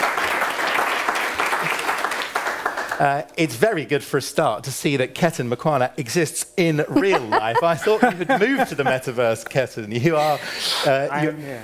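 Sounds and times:
studio audience applause: 0:00.0 - 0:03.1
speech: 0:03.0 - 0:11.6
laughter: 0:06.9 - 0:10.6.

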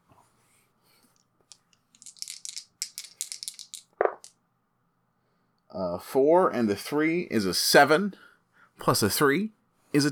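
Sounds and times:
dice rattling: 0:01.5 - 0:04.4
speech: 0:05.8 - 0:10.1.

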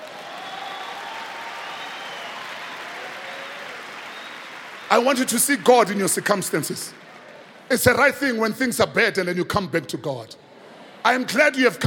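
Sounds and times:
congregation applauding: 0:00.0 - 0:07.7
speech: 0:04.9 - 0:07.1, 0:07.7 - 0:10.4, 0:11.0 - 0:11.8.

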